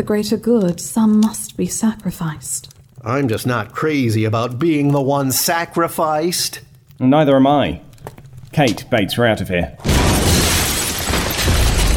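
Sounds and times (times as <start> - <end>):
speech: 0.0 - 7.9, 8.6 - 9.9
door violently smashed open with splintering impact: 9.8 - 11.9.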